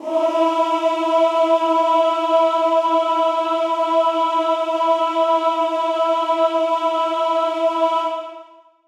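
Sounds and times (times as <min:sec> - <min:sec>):
male chorus singing E4: 0:00.0 - 0:08.7.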